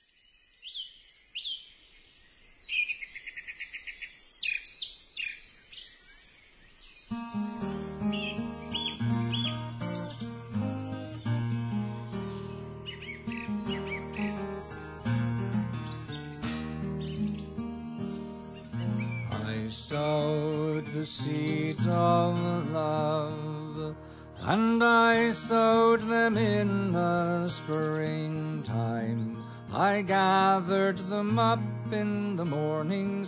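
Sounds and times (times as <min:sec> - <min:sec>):
bright twittering birdsong: 0:00.0 - 0:33.2
instrumental music passage: 0:07.2 - 0:27.7
speech: 0:19.9 - 0:23.5, 0:24.5 - 0:33.2.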